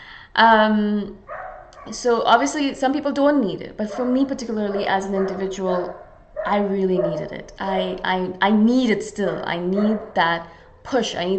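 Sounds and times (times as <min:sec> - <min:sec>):
speech: 0:00.4 - 0:01.2, 0:01.8 - 0:11.3
dog barking outside: 0:01.3 - 0:01.9, 0:03.8 - 0:07.3, 0:09.7 - 0:10.2.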